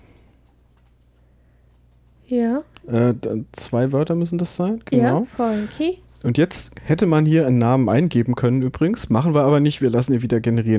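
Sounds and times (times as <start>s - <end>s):
steady low hum: 0.0s - 10.7s
faint keystrokes on a computer keyboard: 0.1s - 1.1s, 1.7s - 2.2s
speech: 2.3s - 10.7s.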